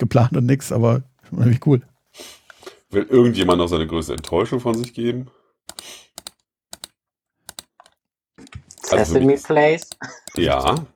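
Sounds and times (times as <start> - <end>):
speech: 0.0 - 6.0, 8.9 - 10.9
computer mouse clicks: 3.4 - 5.0, 5.7 - 8.0, 9.8 - 10.9.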